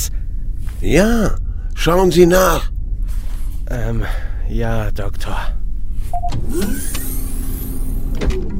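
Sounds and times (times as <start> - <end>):
steady low shuttle engine rumble: 0.0 - 8.5
speech: 0.8 - 2.7, 3.7 - 5.6, 6.2 - 7.0
shuttle sliding door opening with a whirring motor hum: 6.2 - 8.5.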